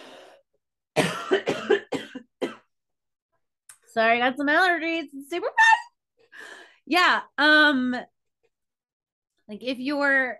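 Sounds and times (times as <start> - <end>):
harsh raspy hacking coughing fit: 1.0 - 2.7
speech: 4.0 - 5.8, 6.9 - 8.1, 9.5 - 10.3.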